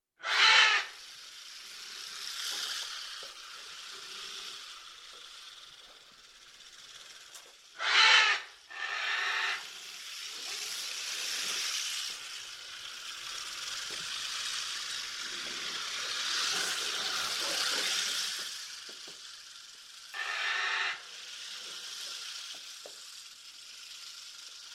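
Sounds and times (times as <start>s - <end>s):
porcupine: 0.2s - 24.7s.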